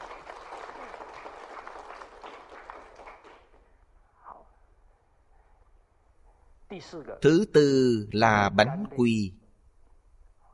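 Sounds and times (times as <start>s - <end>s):
audience applause: 0.0s - 3.6s
speech: 6.7s - 9.4s.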